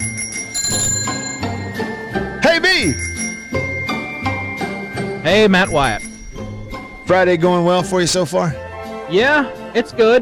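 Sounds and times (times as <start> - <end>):
small bicycle-style bell dinging: 0.0 - 1.9, 2.7 - 7.7
speech: 0.7 - 1.5, 2.8 - 3.1, 5.3 - 6.1, 7.1 - 10.2.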